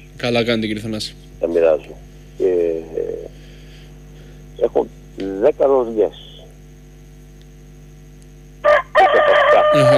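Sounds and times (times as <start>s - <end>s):
speech: 0.2s - 2.1s, 4.7s - 6.2s, 9.8s - 9.9s
rooster crowing: 8.6s - 9.9s.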